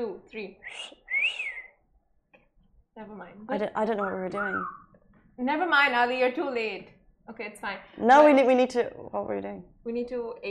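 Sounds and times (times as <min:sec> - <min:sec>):
speech: 0:00.0 - 0:01.4, 0:03.0 - 0:04.8, 0:05.4 - 0:10.4
person whistling two notes: 0:00.6 - 0:01.8, 0:04.4 - 0:04.9.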